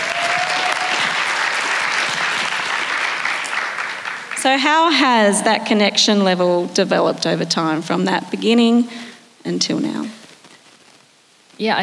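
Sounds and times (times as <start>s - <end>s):
audience applause: 0.0s - 5.4s
speech: 4.4s - 10.2s, 11.6s - 11.8s.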